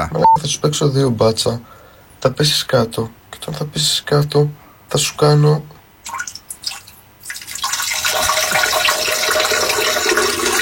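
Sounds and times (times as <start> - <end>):
speech: 0.5 - 6.2
urinating into a toilet: 6.0 - 10.5
toilet flushing: 6.7 - 10.5.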